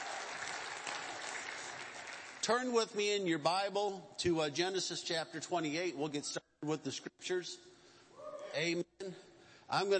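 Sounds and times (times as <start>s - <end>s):
audience clapping: 0.0s - 2.6s
speech: 2.4s - 7.7s, 8.6s - 9.9s.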